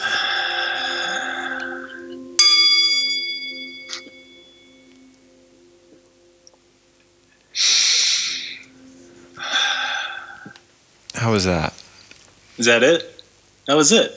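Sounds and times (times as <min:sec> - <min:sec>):
deep breathing in through nose and out mouth: 0:00.0 - 0:02.4, 0:07.6 - 0:10.6
bell ringing: 0:00.0 - 0:10.4
speech: 0:11.2 - 0:11.7, 0:12.6 - 0:14.1.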